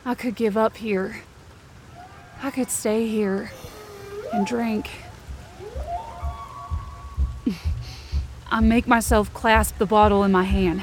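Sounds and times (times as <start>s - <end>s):
steady rain on a road: 0.0s - 10.8s
speech: 0.1s - 1.3s, 2.4s - 3.6s, 4.3s - 5.0s, 7.5s - 7.7s, 8.5s - 10.8s
faint eerie tone gliding upward: 3.4s - 7.8s
low thuds: 3.4s - 10.8s.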